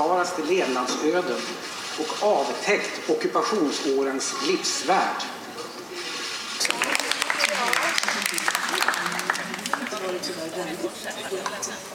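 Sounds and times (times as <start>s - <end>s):
speech: 0.0s - 5.4s, 10.8s - 11.9s
murmur of voices and chatter: 0.0s - 11.9s
soft scattered applause from an indoor audience in a library: 6.6s - 11.7s.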